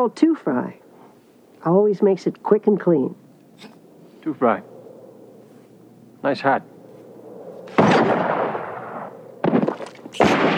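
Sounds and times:
speech: 0.0 - 0.8, 1.6 - 4.7, 6.2 - 6.7
booming gunshots in a gun battle: 7.7 - 10.5.

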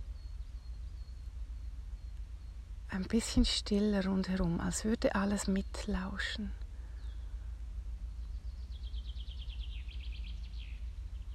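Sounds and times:
birds chirping softly with high trills: 0.0 - 11.3
steady low rumble: 0.0 - 11.3
speech: 2.9 - 6.6.

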